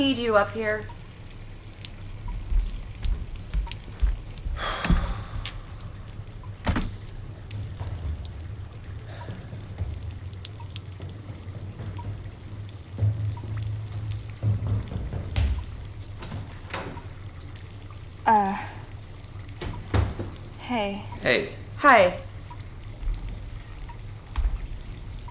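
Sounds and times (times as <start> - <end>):
speech: 0.0 - 1.0, 20.8 - 22.3
steady low hum: 0.0 - 10.6, 20.5 - 24.2
running water pouring and dripping in an apartment: 0.0 - 25.3.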